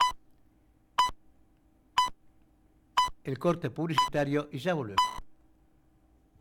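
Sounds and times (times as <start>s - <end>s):
short electronic beeps like a radio time signal: 0.0s - 0.2s, 5.0s - 5.2s
speech: 3.2s - 5.2s.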